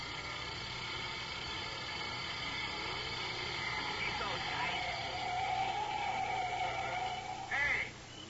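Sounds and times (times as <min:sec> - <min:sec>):
heavy tank truck engine approaching: 0:00.0 - 0:08.2
sharp squeal: 0:02.8 - 0:07.9.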